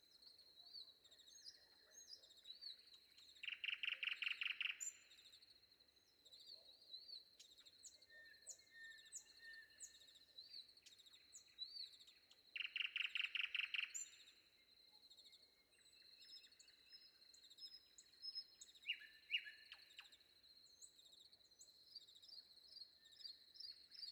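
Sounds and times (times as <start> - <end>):
Common nightingale song with clicking notes and whistled phrases before dawn: 1.1 - 5.1, 7.4 - 10.2, 10.8 - 14.4, 15.8 - 20.2.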